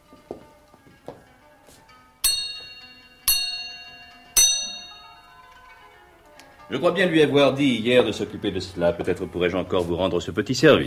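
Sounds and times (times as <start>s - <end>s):
small bell rung to summon a steward: 2.2s - 6.1s
speech: 6.7s - 10.8s.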